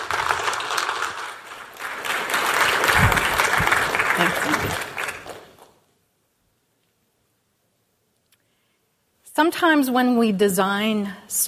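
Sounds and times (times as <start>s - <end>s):
crowd applauding: 0.0s - 5.8s
speech: 9.4s - 11.4s.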